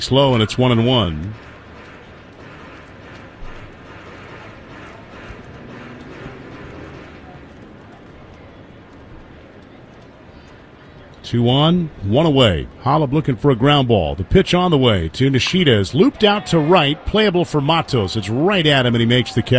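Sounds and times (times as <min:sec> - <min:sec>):
speech: 0:00.0 - 0:01.5, 0:11.3 - 0:19.5
horse hooves pounding rapidly: 0:01.2 - 0:09.3.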